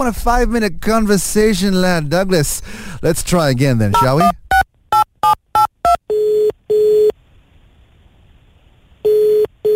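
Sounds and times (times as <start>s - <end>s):
speech: 0.0s - 4.4s
phone keypad beeps dialing a number: 4.0s - 7.1s, 9.1s - 9.7s
phone ringback tone in a double-ring pattern: 4.0s - 7.1s, 9.0s - 9.7s.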